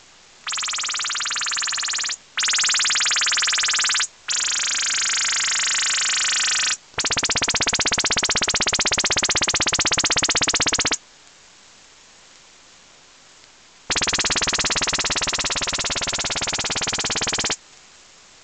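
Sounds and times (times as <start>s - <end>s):
over-the-horizon radar sending bursts with 9 kHz and 18 kHz bandwidth: 0.5s - 11.0s, 13.9s - 17.6s.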